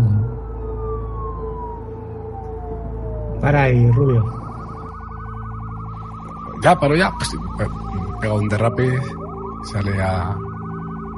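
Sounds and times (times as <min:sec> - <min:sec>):
police car siren on a road near Madrid: 0:00.0 - 0:11.1
speech: 0:03.4 - 0:04.4, 0:06.6 - 0:10.5.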